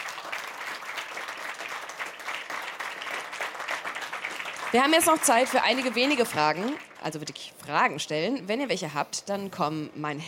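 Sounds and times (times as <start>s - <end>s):
audience applause: 0.0s - 7.2s
speech: 4.7s - 10.2s.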